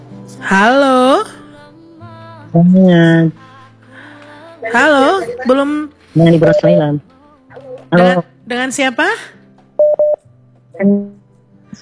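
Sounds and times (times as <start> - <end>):
speech: 0.3 - 1.4, 2.5 - 3.4, 4.6 - 7.1, 7.9 - 10.0, 10.8 - 11.8
telephone redialing beeps after a dropped call: 6.2 - 6.9, 9.8 - 10.2.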